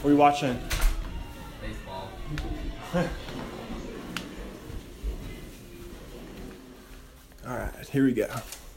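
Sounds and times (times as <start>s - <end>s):
speech: 0.0s - 0.8s, 1.6s - 3.3s, 7.4s - 8.6s
door being pushed shut: 0.6s - 1.1s.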